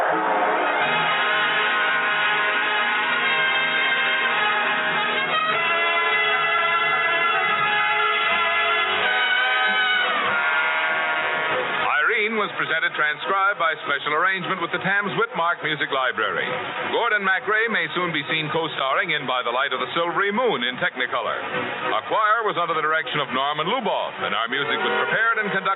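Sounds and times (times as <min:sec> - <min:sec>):
train whistle: 0:00.1 - 0:11.9
speech: 0:13.1 - 0:25.7.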